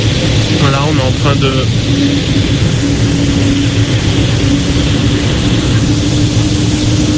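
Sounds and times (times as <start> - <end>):
A400M military transport aircraft engines throttling up on board: 0.0 - 7.1
speech: 1.1 - 2.9.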